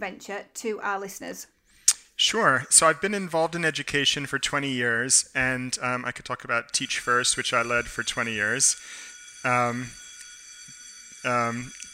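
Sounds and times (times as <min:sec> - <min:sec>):
speech: 0:00.0 - 0:01.6, 0:02.2 - 0:10.0, 0:11.2 - 0:11.8
fire alarm buzzing: 0:06.8 - 0:11.9.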